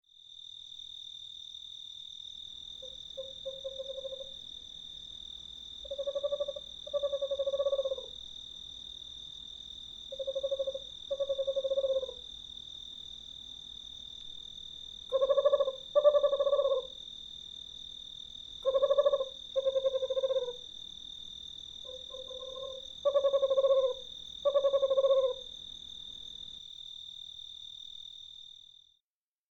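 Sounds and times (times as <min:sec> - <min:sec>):
screech owl calling: 0:02.8 - 0:04.4, 0:05.8 - 0:08.2, 0:10.1 - 0:12.2, 0:15.1 - 0:17.0, 0:18.6 - 0:20.6, 0:21.9 - 0:25.5.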